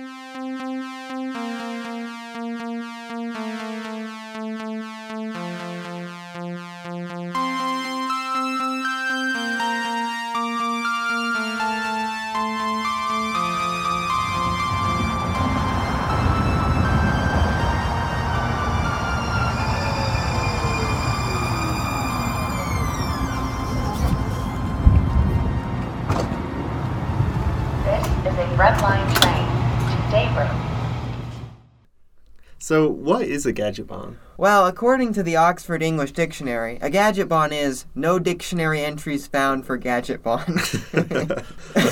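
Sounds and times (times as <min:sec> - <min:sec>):
short instrumental theme tune with bright stepping melody: 0:00.0 - 0:30.4
rushing rumbling train-like noise: 0:12.7 - 0:31.7
speech: 0:32.7 - 0:41.9
laughter: 0:40.4 - 0:41.9.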